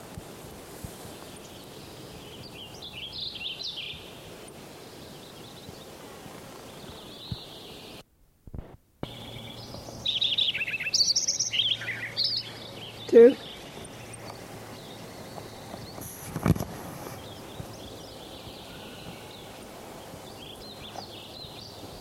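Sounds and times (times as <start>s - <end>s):
Wilson's warbler birdsong: 0.9s - 8.0s, 9.0s - 22.0s
speech: 13.2s - 13.4s.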